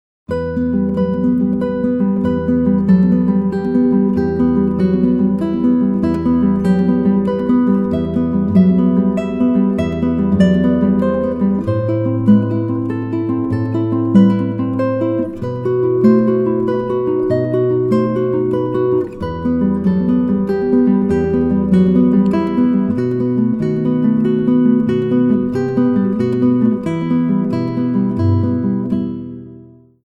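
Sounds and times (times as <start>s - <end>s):
Spanish classical guitar: 0.3s - 30.0s.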